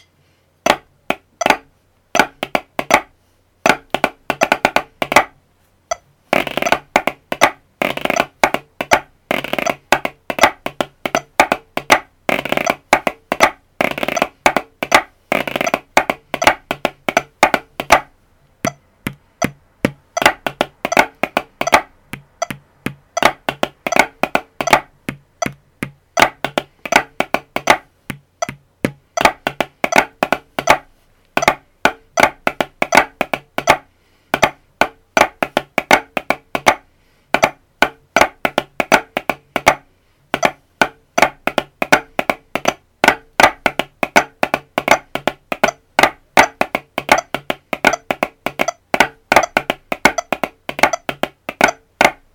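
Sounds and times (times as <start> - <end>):
pipe band snare drum: 0.7 - 3.1, 3.7 - 5.3, 6.3 - 18.1, 18.7 - 52.3.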